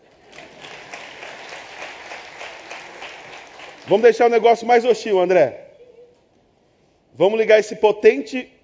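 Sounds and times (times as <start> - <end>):
audience applause welcoming an assistant: 0.0 - 4.2
speech: 3.9 - 5.6, 7.2 - 8.6.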